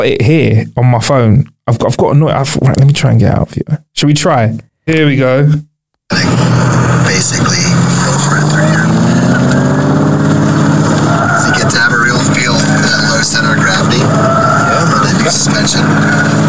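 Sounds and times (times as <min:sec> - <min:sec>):
speech: 0:00.0 - 0:08.8, 0:11.6 - 0:12.4, 0:15.3 - 0:16.4
car engine revving while spinning around doing cone work: 0:06.1 - 0:16.4.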